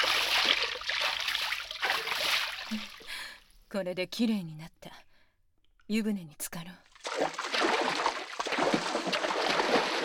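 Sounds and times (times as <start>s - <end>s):
running water splashing while rinsing off soap foam: 0.0s - 3.0s, 6.9s - 10.0s
speech: 3.7s - 4.8s, 5.9s - 7.7s, 8.9s - 10.0s.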